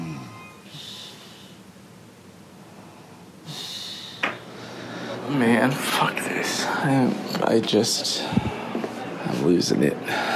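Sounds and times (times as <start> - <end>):
person snoring: 0.0 - 1.6
quiet room hum: 0.0 - 10.3
speech: 5.3 - 8.4, 9.4 - 10.3.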